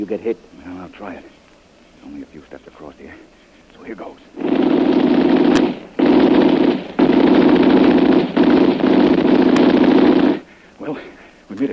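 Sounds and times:
speech: 0.0 - 1.4, 2.0 - 6.0, 10.9 - 11.7
rapid gunfire aimed at someone crossing a path: 4.4 - 10.5.

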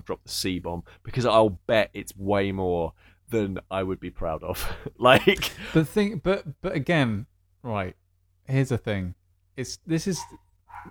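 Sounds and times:
speech: 0.0 - 10.9
dog giving short barks and a yip: 10.2 - 10.9.

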